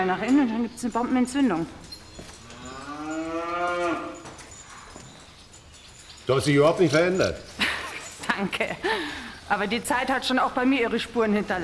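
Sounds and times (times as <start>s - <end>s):
speech: 0.0s - 1.9s, 6.3s - 7.5s, 8.4s - 11.6s
cow mooing in a barn: 2.4s - 4.3s.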